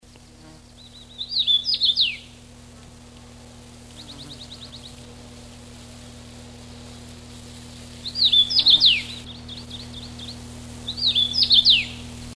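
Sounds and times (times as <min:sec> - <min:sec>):
Carpodacus erythrinus singing: 0:00.7 - 0:02.4, 0:04.0 - 0:04.9, 0:08.0 - 0:12.2.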